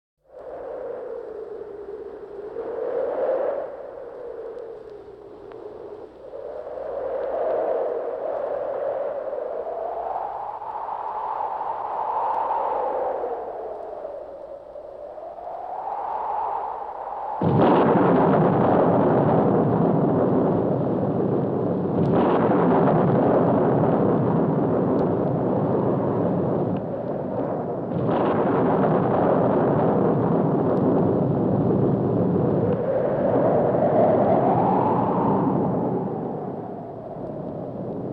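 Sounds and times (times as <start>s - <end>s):
wind: 0.2s - 38.1s
thunder: 17.4s - 38.1s.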